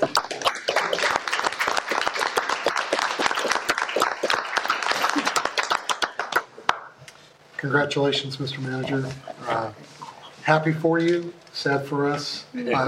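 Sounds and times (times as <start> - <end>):
audience applause: 0.0 - 6.9
speech: 7.6 - 12.8.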